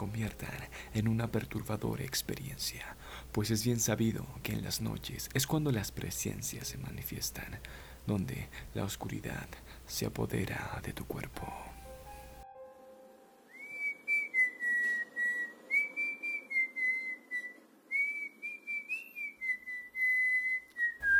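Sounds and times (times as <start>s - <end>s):
speech: 0.0s - 11.7s
person whistling a wavering tune: 13.4s - 21.1s.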